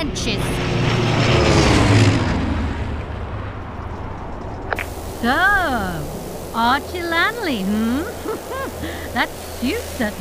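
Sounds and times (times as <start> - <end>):
aircraft propeller engine droning: 0.0 - 10.1
speech: 5.2 - 10.1
laughter: 7.6 - 9.4.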